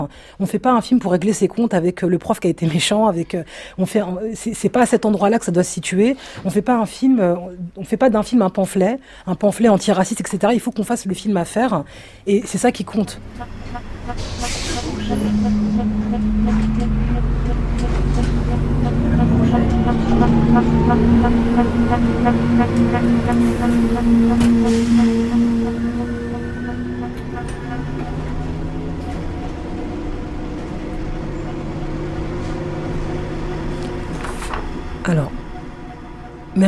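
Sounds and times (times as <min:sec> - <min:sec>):
speech: 0:00.0 - 0:17.0, 0:20.1 - 0:25.0, 0:35.1 - 0:35.4
city bus engine droning and rising in pitch as it accelerates: 0:13.0 - 0:36.6.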